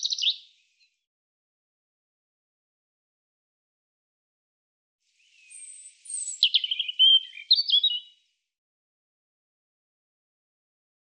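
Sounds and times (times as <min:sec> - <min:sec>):
European robin singing: 0:00.0 - 0:00.9, 0:05.2 - 0:08.2.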